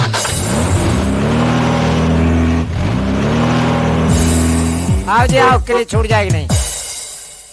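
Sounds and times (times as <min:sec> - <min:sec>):
vehicle engine starting and revving: 0:00.0 - 0:05.6
speech: 0:05.2 - 0:06.6.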